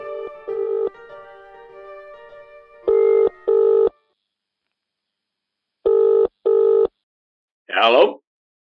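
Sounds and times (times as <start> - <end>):
telephone ringing in double-burst rings: 0.5 - 1.0, 2.9 - 4.0, 5.9 - 6.9
telephone dialing tones: 0.6 - 1.0, 2.9 - 4.0, 5.9 - 6.9
speech: 7.8 - 8.2.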